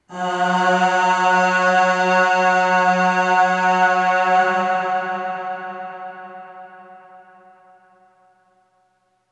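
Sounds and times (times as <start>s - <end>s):
long sung aah on F sharp 2 with long reverb: 0.0s - 8.3s.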